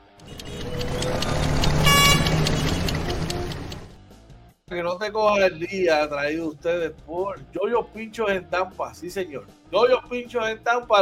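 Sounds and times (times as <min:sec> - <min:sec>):
car horns honking: 0:00.0 - 0:03.9
busy street traffic rumbling: 0:00.0 - 0:04.1
speech: 0:04.8 - 0:10.9.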